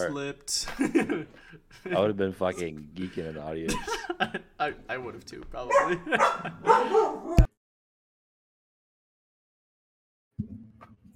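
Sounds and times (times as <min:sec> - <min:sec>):
speech: 0:00.0 - 0:07.5
laughter: 0:00.6 - 0:04.7, 0:05.7 - 0:07.2
dog barking: 0:05.7 - 0:07.5.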